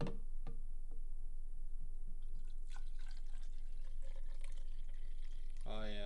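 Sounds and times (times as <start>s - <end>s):
faint hum: 0.0s - 6.0s
liquid pouring into a glass: 2.2s - 6.0s.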